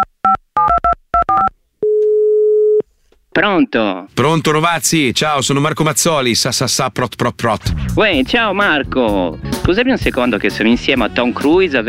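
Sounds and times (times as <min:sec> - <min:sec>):
steady single-pitched telephone line tone: 0:01.3 - 0:02.8
speech: 0:03.4 - 0:11.8.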